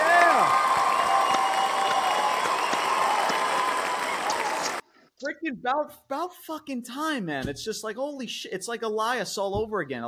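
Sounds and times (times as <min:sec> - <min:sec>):
crowd applause: 0:00.0 - 0:04.8
faint cheer: 0:00.0 - 0:04.8
speech: 0:05.4 - 0:10.0.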